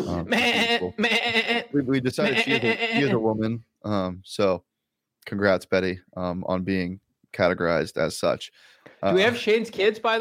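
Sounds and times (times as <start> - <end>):
speech: 0.0 - 10.2
mascot goat bleating: 0.1 - 3.2.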